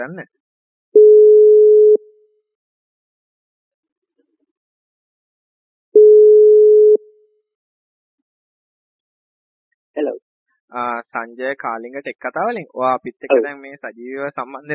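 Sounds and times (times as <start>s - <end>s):
speech: 0.0s - 0.4s, 10.0s - 14.7s
low-pitched telephone ringing tones while connecting a caller: 1.0s - 2.0s, 6.0s - 7.0s.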